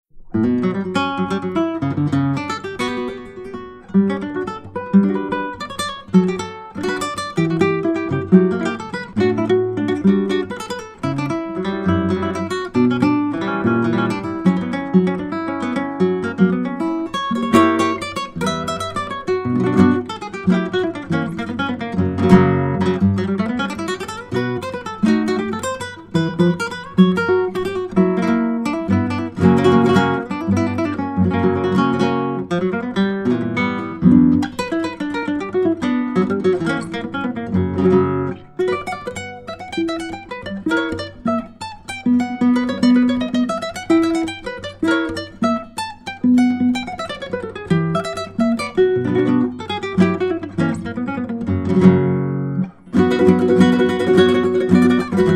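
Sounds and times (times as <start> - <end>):
instrumental music: 0.0 - 55.3.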